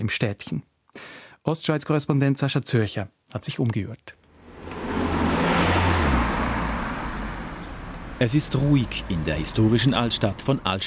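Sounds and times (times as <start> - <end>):
speech: 0.0 - 4.2, 8.2 - 10.8
single car driving past on a street: 4.3 - 10.2.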